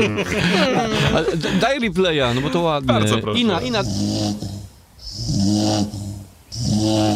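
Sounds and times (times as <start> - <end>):
laughter: 0.0 - 3.8
speech: 0.0 - 4.5, 5.1 - 6.0, 6.6 - 7.1
dog snoring loudly with raspy hiss: 3.7 - 7.1.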